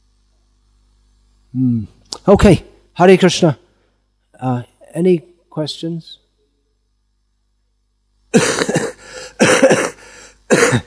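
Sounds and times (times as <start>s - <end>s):
speech: 1.5s - 3.6s, 4.4s - 6.2s, 8.3s - 8.8s
person coughing with throaty clearing: 8.4s - 10.8s.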